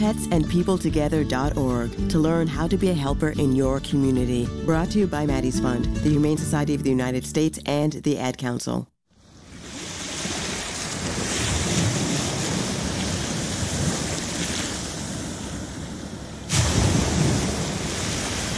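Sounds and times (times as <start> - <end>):
speech: 0.0 - 8.9
ocean waves breaking on the shore: 9.2 - 18.5.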